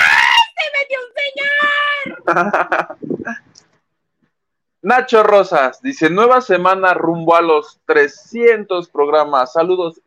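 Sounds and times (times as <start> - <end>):
person imitating a startled high-pitched scream: 0.0 - 0.6
laughter: 2.1 - 3.4
speech: 2.3 - 3.5, 4.8 - 10.0.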